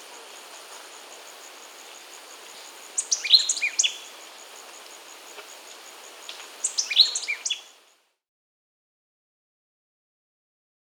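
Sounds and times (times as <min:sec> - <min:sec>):
white-lored euphonia singing in the Amazon in Peru: 0:03.0 - 0:04.2, 0:06.6 - 0:07.8.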